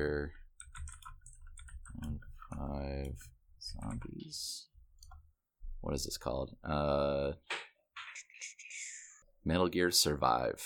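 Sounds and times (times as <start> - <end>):
typing on a computer keyboard: 0.6 - 4.2
speech: 3.1 - 4.7, 5.8 - 7.7, 9.4 - 10.6.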